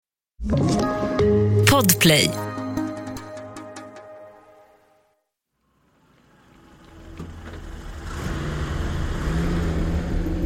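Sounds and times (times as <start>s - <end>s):
speech: 0.4s - 2.5s
army jeep engine driving down a long runway: 5.8s - 10.4s.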